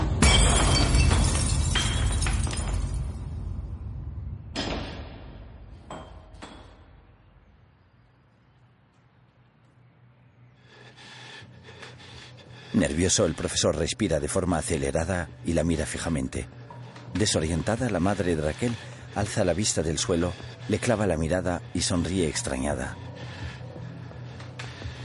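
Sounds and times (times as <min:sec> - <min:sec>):
ceramic cup smashing against a kitchen counter and shattering: 0:00.2 - 0:02.9
speech: 0:12.8 - 0:16.6, 0:17.1 - 0:23.3.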